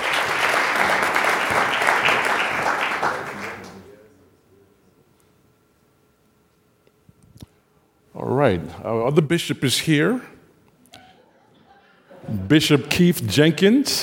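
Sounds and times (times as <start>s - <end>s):
crowd applauding a panel of speakers: 0.0s - 4.0s
speech: 8.5s - 10.4s, 12.5s - 14.0s.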